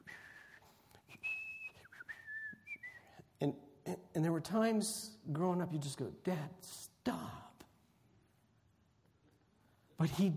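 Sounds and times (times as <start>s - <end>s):
man whistling a short wandering tune: 0.0s - 3.2s
faint hiss: 0.0s - 10.3s
speech: 3.4s - 7.4s, 10.0s - 10.3s.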